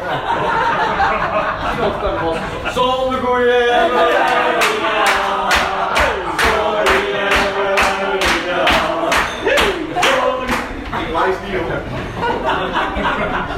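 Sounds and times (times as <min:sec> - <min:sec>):
laughter: 0:00.0 - 0:13.5
many voices cheering and shouting: 0:03.8 - 0:10.5
audience at a stand-up comedy show clapping rhythmically: 0:04.1 - 0:10.9.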